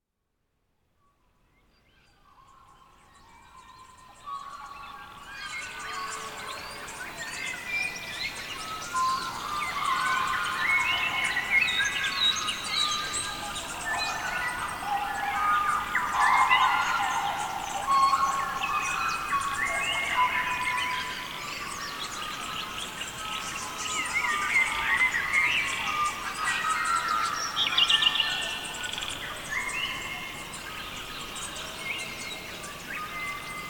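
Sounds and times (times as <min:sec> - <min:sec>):
birdsong: 0:01.7 - 0:33.6.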